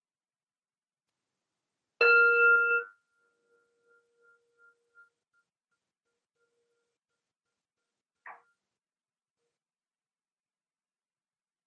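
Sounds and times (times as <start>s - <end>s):
meditation bell struck: 2.0s - 5.1s.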